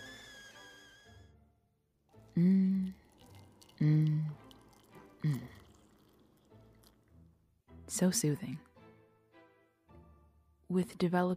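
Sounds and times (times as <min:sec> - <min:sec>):
high whistle-like tone: 0:00.0 - 0:01.4
freshly boiled water pouring in glugging bursts: 0:02.1 - 0:07.2
speech: 0:02.4 - 0:02.8, 0:03.8 - 0:04.2, 0:08.0 - 0:08.7, 0:10.8 - 0:11.3.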